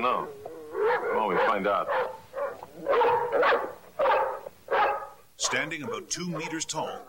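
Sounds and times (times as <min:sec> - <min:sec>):
speech: 0:00.0 - 0:02.2, 0:02.8 - 0:04.2, 0:05.4 - 0:07.0
dog barking: 0:00.8 - 0:07.0.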